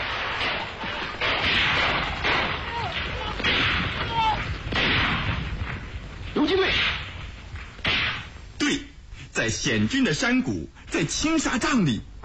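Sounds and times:
loud gunfire crackling in bursts: 0.0 - 8.5
speech: 9.5 - 12.2.

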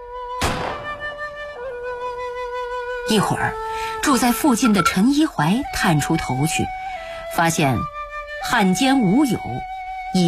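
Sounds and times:
gunshot bang: 0.4 - 1.2
speech: 3.1 - 10.2.

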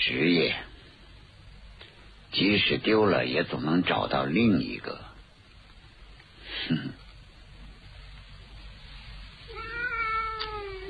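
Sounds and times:
speech: 0.0 - 0.7, 2.3 - 5.1, 6.6 - 7.0
cat yowling as its tail is pulled: 9.5 - 10.8.

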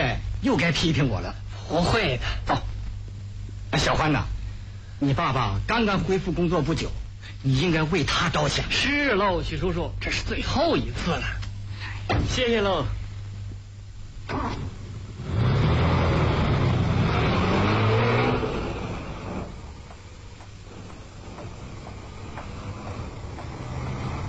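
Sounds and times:
speech: 0.4 - 2.7, 3.7 - 4.4, 5.0 - 11.4, 12.1 - 13.0, 14.3 - 14.8
car engine revving as the car pulls away onto the road: 15.2 - 19.9, 20.7 - 24.2.

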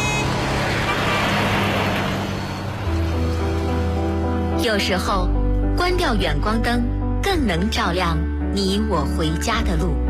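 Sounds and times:
car passing on a road at night: 0.0 - 4.6
speech: 4.6 - 10.0.

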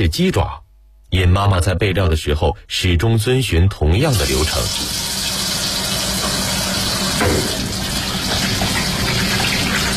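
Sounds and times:
speech: 0.0 - 5.2
clean water gushing over chicken feet and pig trotters being rinsed: 4.2 - 9.9.

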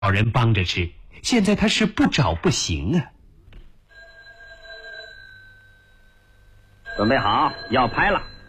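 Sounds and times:
faint noise: 0.0 - 8.4
speech: 0.1 - 3.2, 7.0 - 8.3
telephone ringing: 3.8 - 8.4.

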